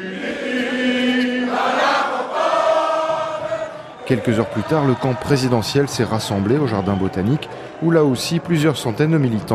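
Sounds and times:
large crowd singing the national anthem in chorus: 0.0s - 5.5s
speech: 4.1s - 9.5s.

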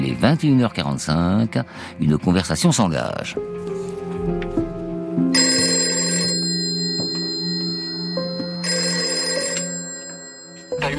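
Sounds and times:
speech: 0.1s - 4.7s
telephone ringing with trilling bell tone: 5.4s - 10.9s.

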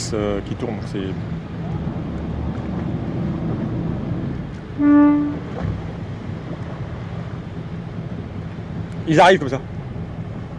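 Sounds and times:
low boat engine rumble: 0.0s - 10.5s
steady wind on open water: 0.0s - 10.5s
speech: 0.1s - 1.6s, 4.8s - 5.8s, 9.1s - 9.8s
boat horn blast on open water: 4.7s - 6.0s.

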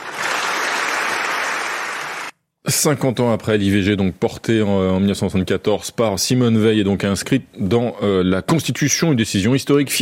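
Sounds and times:
large assembly of French parliament members applauding: 0.0s - 2.3s
speech: 2.7s - 10.0s.

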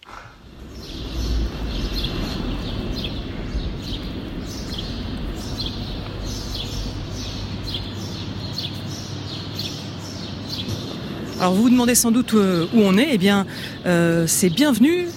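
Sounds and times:
low rumbling background of a large empty space: 0.0s - 13.8s
birds singing in a deserted train station: 0.0s - 15.1s
speech: 11.4s - 15.1s.

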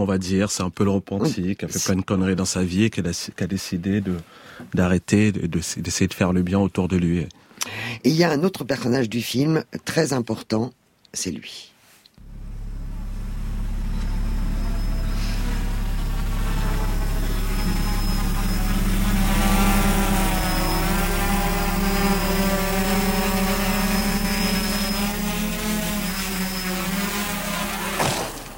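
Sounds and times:
speech: 0.0s - 11.7s
camera drone propellers buzzing overhead: 12.2s - 28.5s.

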